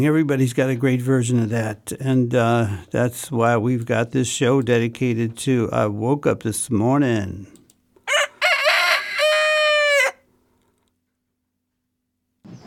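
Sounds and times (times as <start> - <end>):
speech: 0.0 - 7.6
rooster crowing cock-a-doodle-doo: 8.0 - 10.3.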